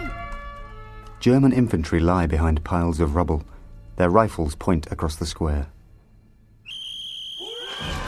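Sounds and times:
speech: 0:01.2 - 0:05.7
officer blowing a whistle: 0:06.6 - 0:08.0.

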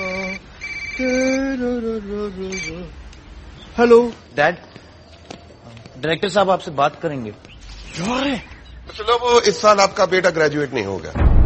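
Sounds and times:
phone ringing with a melodic electronic ringtone as a call is placed: 0:00.0 - 0:01.6, 0:02.5 - 0:02.9
speech: 0:01.0 - 0:03.0, 0:03.8 - 0:04.7, 0:06.0 - 0:11.3.

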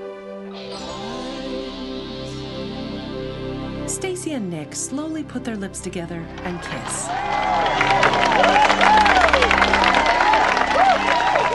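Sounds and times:
sustained music: 0:00.0 - 0:11.5
speech: 0:03.9 - 0:10.0
crowd applauding: 0:06.4 - 0:11.5
crowd cheering: 0:06.6 - 0:11.5.

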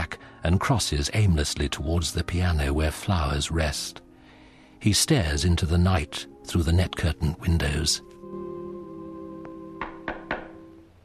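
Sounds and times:
speech: 0:00.4 - 0:04.0, 0:04.8 - 0:08.1
firm knocks on a door: 0:09.8 - 0:10.6.

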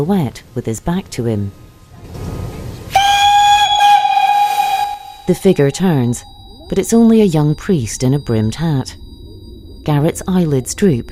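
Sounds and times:
speech: 0:00.0 - 0:01.6, 0:05.3 - 0:09.0, 0:09.8 - 0:11.1
steam train hissing on a station platform: 0:02.9 - 0:06.2
low rumble of a steam train: 0:04.6 - 0:11.1.

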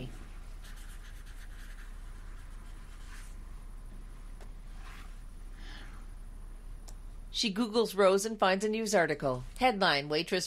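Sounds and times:
low steady hum in a quiet room: 0:00.0 - 0:10.4
pen scratching across paper in short soft strokes: 0:00.6 - 0:03.4
speech: 0:07.4 - 0:10.4.

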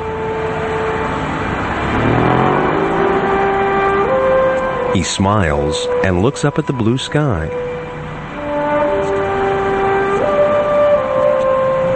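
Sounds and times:
cars whizzing by on a street: 0:00.0 - 0:11.9
vehicle passing: 0:00.0 - 0:11.9
speech: 0:05.0 - 0:07.8.

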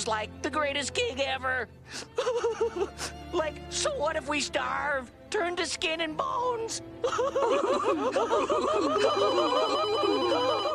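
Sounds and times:
speech: 0:00.0 - 0:10.7
laughter: 0:02.2 - 0:03.1, 0:07.0 - 0:10.7
telephone ringing with a warbling trilling tone: 0:09.0 - 0:10.7.

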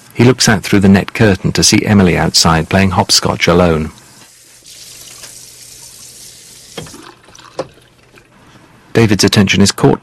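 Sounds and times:
speech: 0:00.2 - 0:04.0, 0:09.0 - 0:10.0
water running from a kitchen sink tap during washing up: 0:02.2 - 0:08.2
soft water splashes during washing up: 0:04.1 - 0:08.3.

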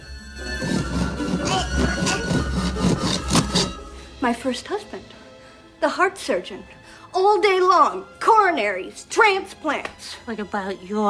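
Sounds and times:
knife blade sawing through wooden crib panels: 0:00.6 - 0:03.8
speech: 0:04.2 - 0:05.1, 0:05.8 - 0:11.0.

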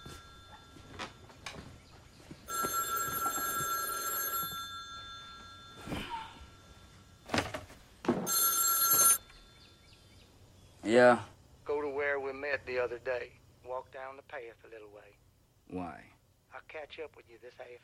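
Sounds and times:
telephone ringing: 0:00.0 - 0:01.6, 0:02.4 - 0:09.4
speech: 0:10.9 - 0:11.3, 0:12.7 - 0:17.8.

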